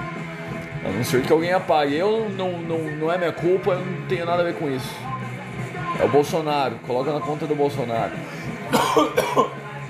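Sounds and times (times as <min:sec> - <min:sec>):
speech: 0:00.8 - 0:05.1, 0:06.0 - 0:09.6
person coughing from smoke: 0:08.7 - 0:09.6.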